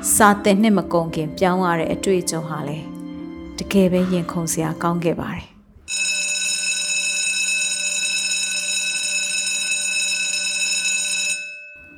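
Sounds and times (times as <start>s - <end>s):
speech: 0.2s - 3.0s, 3.6s - 6.0s
electric school bell ringing for class: 5.9s - 11.9s.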